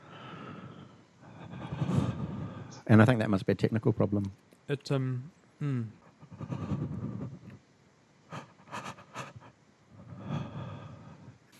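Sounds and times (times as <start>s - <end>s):
voice imitating heavy noisy breathing on a phone call: 0.0s - 2.9s, 5.7s - 7.6s, 8.3s - 11.5s
speech: 2.9s - 6.6s.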